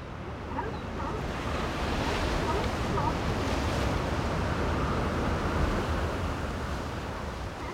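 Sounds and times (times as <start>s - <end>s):
Pacific surf on a secluded beach at Big Sur: 0.0s - 7.7s
wind on the Central California coast: 0.0s - 7.7s
sea lions barking: 0.4s - 3.3s.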